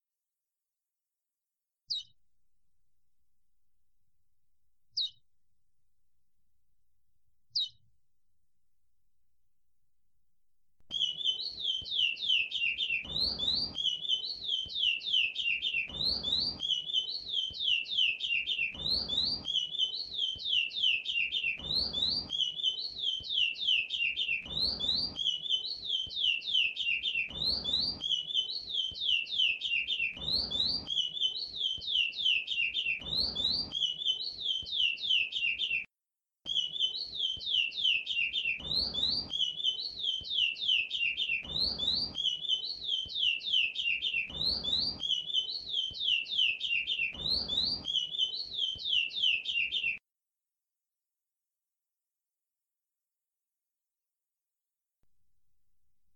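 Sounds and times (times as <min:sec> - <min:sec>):
bird singing: 0:05.0 - 0:05.2, 0:10.9 - 0:35.9, 0:36.5 - 0:50.0.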